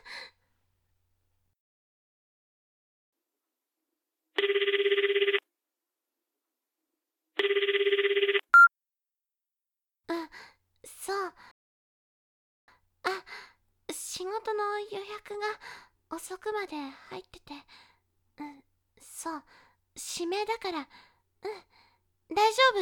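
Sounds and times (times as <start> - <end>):
telephone ringing in buzzy bursts: 4.4 - 5.4, 7.4 - 8.7
speech: 14.4 - 22.8.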